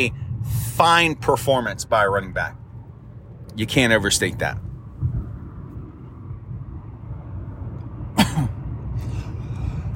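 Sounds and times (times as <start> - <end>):
speech: 0.0 - 2.6, 3.6 - 4.6
steady low rumble: 0.0 - 9.9
person coughing: 8.2 - 8.6.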